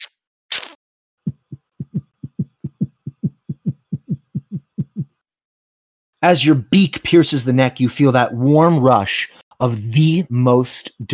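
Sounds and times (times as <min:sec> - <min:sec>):
fast heartbeat in double beats: 0:01.2 - 0:05.2
speech: 0:06.2 - 0:11.1.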